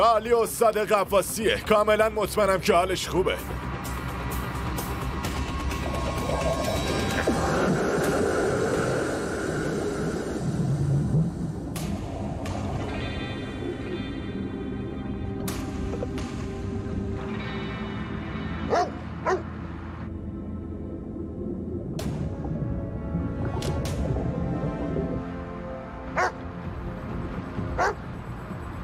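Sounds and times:
speech: 0.0s - 3.6s
low rumbling background: 0.0s - 28.8s
dog barking: 18.7s - 19.5s, 26.2s - 26.4s, 27.8s - 28.0s.

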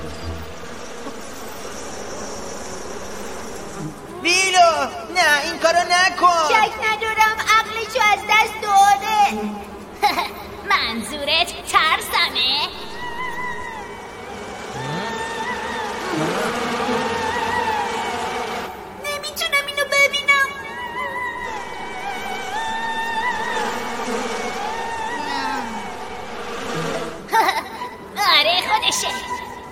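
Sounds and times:
bee buzzing: 0.0s - 4.4s, 11.7s - 19.4s, 21.2s - 29.7s
speech: 4.2s - 13.0s.

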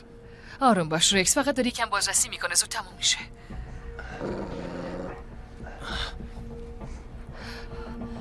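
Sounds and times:
speech: 0.6s - 4.4s
guard dog growling: 4.0s - 5.4s.

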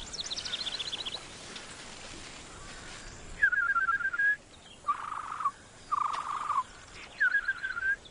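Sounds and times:
bird singing outdoors with trills and whistled notes: 0.0s - 1.8s, 2.5s - 8.1s.

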